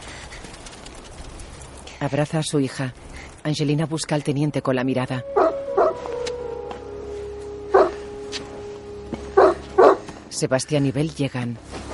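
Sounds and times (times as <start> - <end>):
speech: 2.0 - 6.1, 10.4 - 11.7
faint steady whine-like tone: 4.8 - 10.4
female dog digging in the snow barking: 7.7 - 8.0, 9.4 - 10.0.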